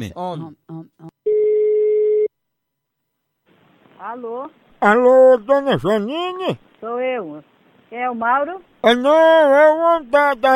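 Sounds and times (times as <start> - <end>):
speech: 0.0 - 1.0, 4.0 - 10.5
telephone ringback tone as a call is placed: 1.3 - 2.3.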